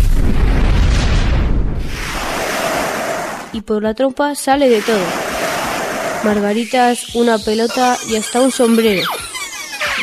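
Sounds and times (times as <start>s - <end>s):
loud rumbling explosion of a swollen elephant: 0.0s - 3.5s
speech: 3.6s - 5.3s, 6.2s - 9.2s.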